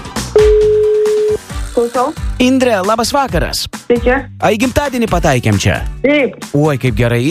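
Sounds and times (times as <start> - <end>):
telephone ringback tone while calling someone: 0.3 - 1.5
speech: 1.8 - 7.3.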